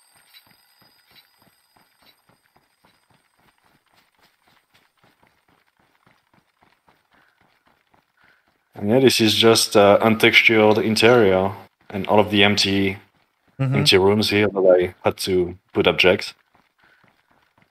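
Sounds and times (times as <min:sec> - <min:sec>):
bell alarm clock ringing with hammer striking metallic clangs: 0:00.0 - 0:03.3
speech: 0:08.8 - 0:13.0, 0:13.6 - 0:16.4.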